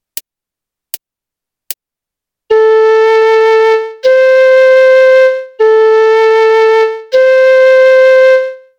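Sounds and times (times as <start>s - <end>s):
flute: 2.5s - 8.7s.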